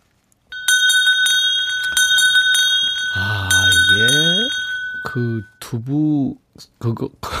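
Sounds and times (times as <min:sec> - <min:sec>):
small metallic bell ringing: 0:00.5 - 0:05.6
speech: 0:05.2 - 0:07.3.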